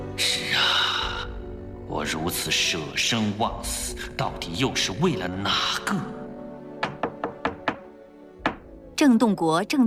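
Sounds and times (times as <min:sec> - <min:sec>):
speech: 0:00.2 - 0:00.5, 0:02.1 - 0:06.2, 0:09.0 - 0:09.8
knocking on a wooden door: 0:06.7 - 0:08.8.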